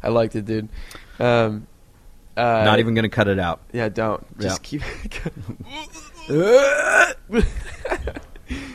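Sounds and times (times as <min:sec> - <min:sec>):
speech: 0:00.0 - 0:01.7, 0:02.4 - 0:08.7
long drawn-out burp: 0:06.4 - 0:07.2.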